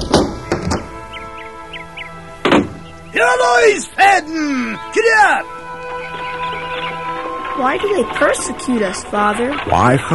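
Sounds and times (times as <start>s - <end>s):
door being opened: 0.0s - 1.0s, 2.4s - 2.9s
speech: 3.1s - 5.6s, 7.6s - 10.1s.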